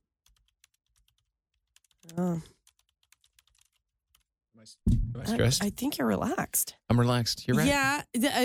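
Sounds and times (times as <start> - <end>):
quiet computer keyboard typing: 0.2 - 4.3
speech: 2.0 - 2.6, 4.6 - 8.4.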